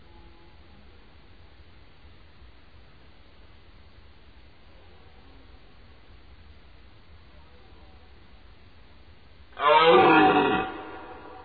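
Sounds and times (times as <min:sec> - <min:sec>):
deer giving a loud rough drawn-out bellow: 0:09.6 - 0:11.4.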